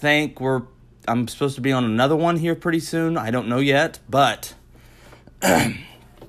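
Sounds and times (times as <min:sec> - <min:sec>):
speech: 0:00.0 - 0:04.6, 0:05.4 - 0:05.9
single loud harsh throaty cough: 0:05.4 - 0:06.1.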